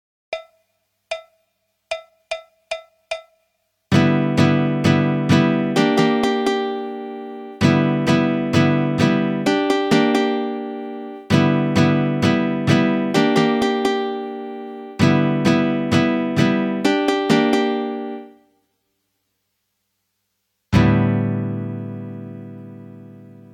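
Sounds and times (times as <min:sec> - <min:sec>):
guitar rehearsal: 0:03.9 - 0:18.4, 0:20.8 - 0:23.5.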